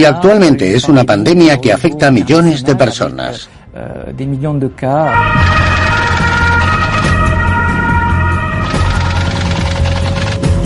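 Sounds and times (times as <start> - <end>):
speech: 0.0 - 5.9
quarantine ambulance siren wailing: 5.0 - 9.7.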